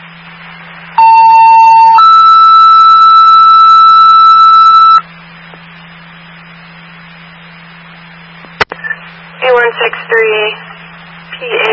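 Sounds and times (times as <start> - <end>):
faint hum: 0.0 - 11.7
two-tone dispatch radio alert: 1.0 - 5.0.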